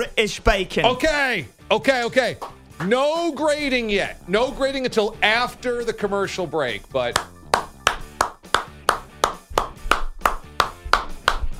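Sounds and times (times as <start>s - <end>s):
speech: 0.1s - 7.3s
single pair of hands clapping politely in tennis applause style: 1.8s - 3.7s, 7.0s - 11.5s.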